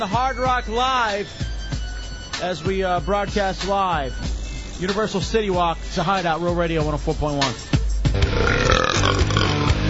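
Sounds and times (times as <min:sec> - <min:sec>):
speech: 0:00.0 - 0:01.5, 0:02.4 - 0:07.7
long loud burp: 0:08.3 - 0:09.8.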